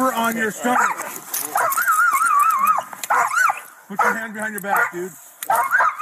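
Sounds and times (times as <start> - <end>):
steady hiss: 0.0 - 5.9
speech: 0.2 - 1.8, 3.9 - 5.8
police dog excited yips: 0.6 - 5.9
police dog whining high-pitched: 0.7 - 4.2, 5.5 - 5.9.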